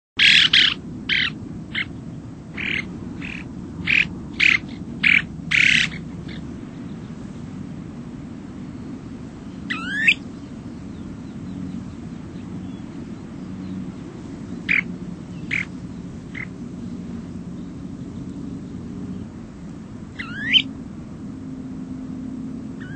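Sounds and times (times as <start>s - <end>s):
Snowy Plover calling: 0.2s - 7.2s, 9.5s - 19.4s, 20.0s - 20.8s, 22.7s - 22.9s.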